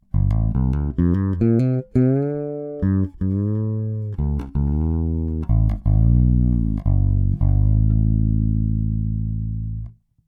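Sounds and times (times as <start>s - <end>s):
fretless four-string bass guitar with flatwound strings: 0.0s - 10.1s.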